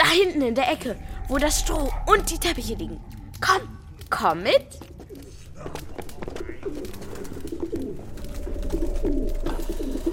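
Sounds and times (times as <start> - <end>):
speech: 0.2 - 4.9, 9.0 - 10.1
flock of wood pigeons cooing perched on rods and slats: 5.0 - 10.1.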